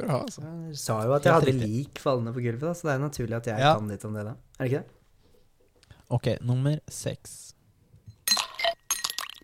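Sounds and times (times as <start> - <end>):
speech: 0.0 - 5.0, 6.1 - 7.6
ice cubes dropping into a glass: 8.2 - 9.4.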